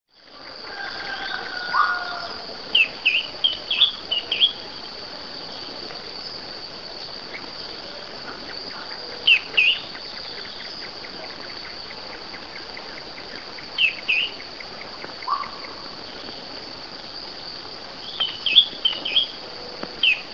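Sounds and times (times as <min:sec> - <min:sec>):
Drymophila ferruginea: 0:00.4 - 0:04.8, 0:07.2 - 0:16.4, 0:18.0 - 0:20.3.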